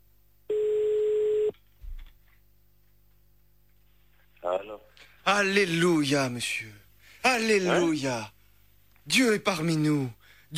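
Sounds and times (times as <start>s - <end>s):
telephone ringing tone on an outgoing call: 0.5s - 1.5s
speech: 5.3s - 8.4s, 9.1s - 10.5s.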